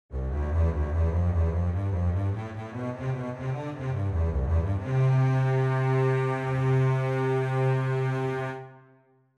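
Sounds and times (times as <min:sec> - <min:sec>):
string bass: 0:00.1 - 0:08.9.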